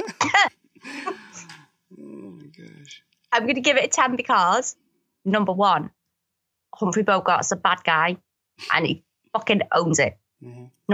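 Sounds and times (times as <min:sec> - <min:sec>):
person coughing: 0:00.0 - 0:01.6
short low vocal sound: 0:00.8 - 0:03.0, 0:10.4 - 0:10.7
speech: 0:02.9 - 0:06.0, 0:06.8 - 0:10.9.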